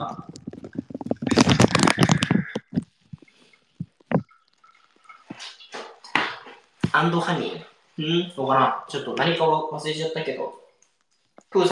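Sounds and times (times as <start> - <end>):
bubbly crackles of soap foam: 0.0 - 9.4
lathered soap foam squishing: 0.2 - 7.2
speech: 7.0 - 10.6, 11.5 - 11.7.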